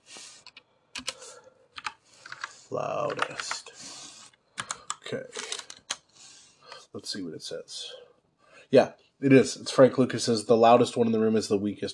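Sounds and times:
crisp computer keyboard clicks: 0.4 - 1.2, 1.8 - 2.5, 3.1 - 3.6, 4.6 - 6.0
speech: 2.7 - 3.8, 5.1 - 5.5, 6.9 - 8.0, 8.7 - 11.9.

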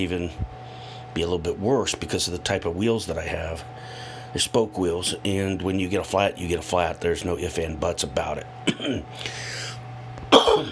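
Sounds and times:
speech: 0.0 - 9.6
dry cough: 8.7 - 9.1, 10.3 - 10.7.

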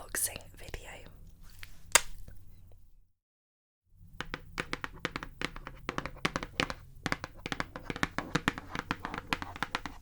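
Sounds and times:
tapping and handling sounds: 4.2 - 10.0.

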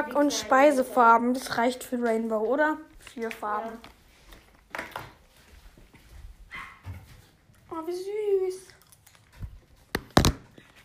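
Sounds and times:
speech: 0.0 - 3.9, 7.9 - 8.7
dog barking: 6.5 - 7.0.

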